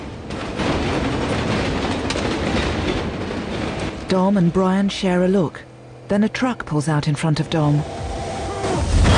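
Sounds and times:
train rushing past on railway tracks: 0.0 - 9.0
speech: 4.1 - 8.1.

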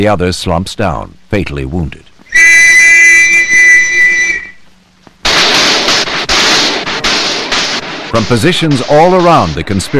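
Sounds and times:
speech: 0.0 - 2.6, 8.1 - 9.9
whistling tone: 2.3 - 4.6
police rifles firing at a house's windows: 5.2 - 9.9.

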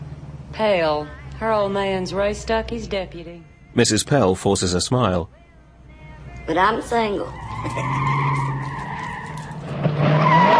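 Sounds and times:
speech: 0.6 - 5.4, 6.5 - 8.5
red car tires screeching as it speeds across a main street: 6.8 - 10.5.

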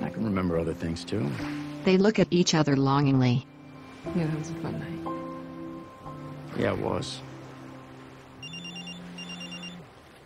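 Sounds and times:
speech: 0.3 - 5.1, 6.6 - 7.3
telephone ringing with a warbling trilling bell: 8.4 - 9.8.

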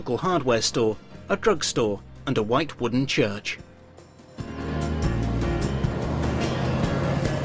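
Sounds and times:
speech: 0.0 - 3.7
van passing on a quiet small-town street: 4.1 - 7.4.

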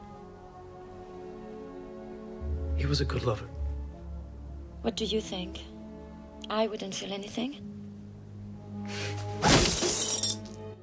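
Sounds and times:
low steady musical drone: 0.0 - 9.4
speech: 2.8 - 3.6, 4.8 - 5.7, 6.5 - 7.8
fist smashing through a chest with shattering and splintering debris: 9.4 - 10.5.

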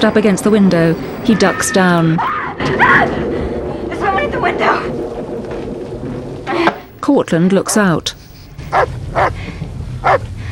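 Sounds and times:
speech: 0.0 - 3.4, 4.3 - 5.0, 6.6 - 9.3
dog barking: 8.7 - 9.3, 10.0 - 10.2.

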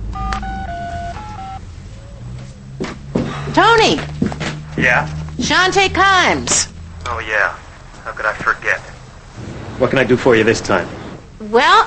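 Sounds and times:
cordless phone keypad touch-tone beeps: 0.1 - 1.6
speech: 3.6 - 4.1, 4.8 - 8.9, 9.8 - 11.8.

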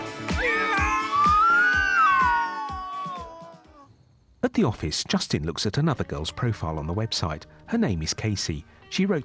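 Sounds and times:
person imitating a cat with drawn-out wavering meows: 0.3 - 3.9
speech: 4.6 - 9.2.

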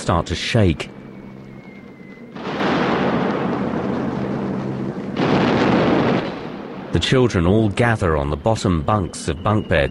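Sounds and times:
speech: 0.0 - 1.0, 6.9 - 9.9
explosions shaking a building during a bombing raid: 2.4 - 7.8.

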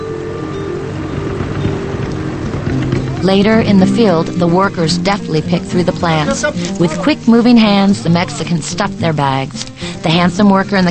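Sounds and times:
wind noise: 0.0 - 8.5
tractor engine droning while moving across a cotton field: 0.0 - 10.9
speech: 3.2 - 10.9.

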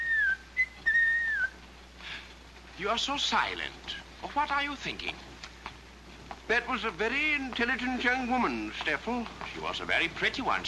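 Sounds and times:
person whistling while hiking along a path through a valley: 0.0 - 1.5
speech: 2.8 - 5.3, 6.5 - 10.6.

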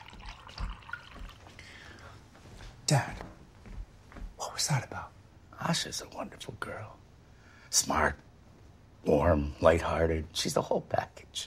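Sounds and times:
milk poured into a glass in a kitchen: 0.0 - 1.6
speech: 2.9 - 3.3, 4.5 - 7.0, 7.7 - 8.3, 9.0 - 11.4.

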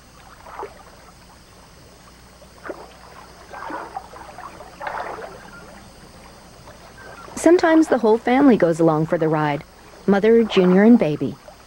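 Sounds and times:
low hiss: 0.0 - 11.6
orangutan paddling a small boat in water: 0.2 - 1.1, 2.6 - 7.4
speech: 7.4 - 11.4.

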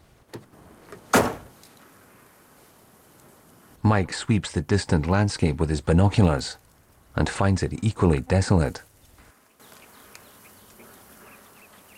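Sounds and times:
truck door slamming shut: 0.3 - 1.6
speech: 3.9 - 6.6, 7.2 - 8.9
faint click: 9.7 - 10.8.

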